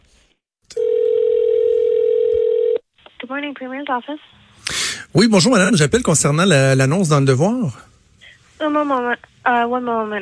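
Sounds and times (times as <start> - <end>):
electronic telephone ringing tone heard through the line: 0.8 - 2.8
speech: 3.3 - 4.4, 5.1 - 7.9, 8.6 - 10.2.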